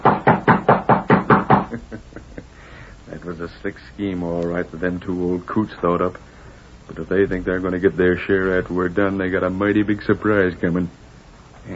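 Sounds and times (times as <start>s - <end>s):
knuckles knocking on a ranch house door: 0.0s - 1.8s
speech: 3.5s - 6.3s, 6.9s - 11.0s.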